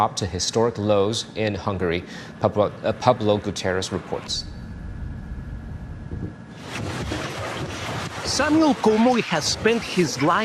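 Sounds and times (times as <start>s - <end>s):
speech: 0.0s - 4.6s, 8.3s - 10.4s
wind: 0.0s - 10.4s
riverboat engine low rumble: 1.8s - 10.4s
rush of water: 6.5s - 10.4s.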